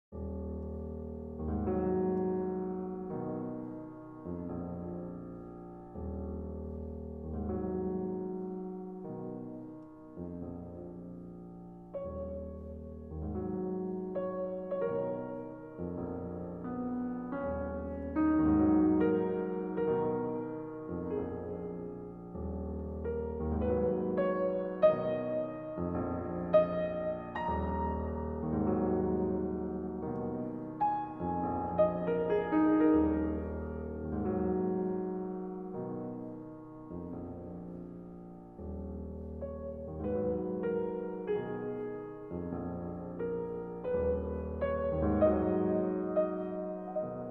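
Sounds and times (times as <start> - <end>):
piano piece: 0.1 - 47.2.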